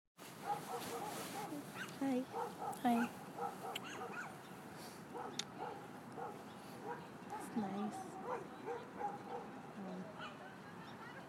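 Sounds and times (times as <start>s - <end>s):
dogs barking and yipping at an off-leash park: 0.4s - 4.5s, 5.1s - 9.6s, 10.2s - 10.5s
speech: 2.0s - 4.5s, 5.1s - 10.4s.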